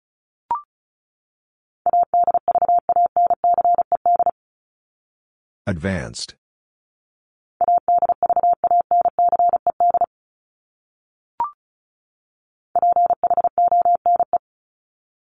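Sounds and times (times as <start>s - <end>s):
fast Morse code beeps at 35 words per minute: 1.9s - 4.3s, 7.6s - 10.1s, 12.8s - 14.4s
speech: 5.6s - 6.4s.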